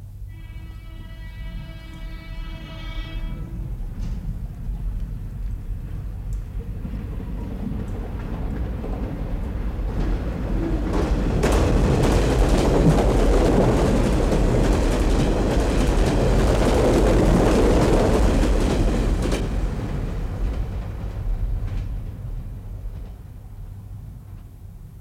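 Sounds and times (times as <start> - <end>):
express train roar of wheels and rushing air: 0.0 - 25.0
express train horn blast: 0.1 - 4.3.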